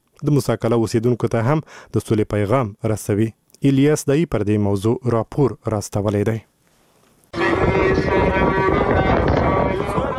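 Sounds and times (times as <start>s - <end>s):
speech: 0.2s - 6.5s
strong wind blowing with dust between Lashkargah and Musa Qala in Helmand: 7.4s - 10.1s.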